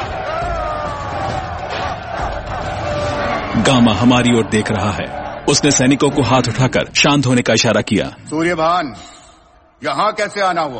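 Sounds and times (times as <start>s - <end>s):
large crowd at a fight cheering and shouting: 0.0s - 8.0s
speech: 3.6s - 9.2s, 9.8s - 10.7s.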